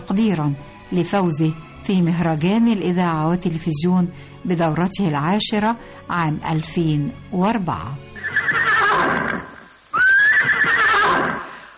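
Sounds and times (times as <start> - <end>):
speech: 0.1 - 8.6
horse neighing: 8.2 - 11.7.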